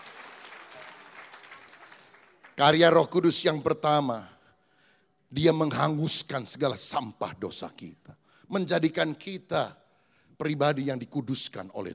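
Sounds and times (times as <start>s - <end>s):
audience applause: 0.0s - 2.6s
speech: 2.6s - 4.4s, 5.3s - 9.8s, 10.4s - 11.9s.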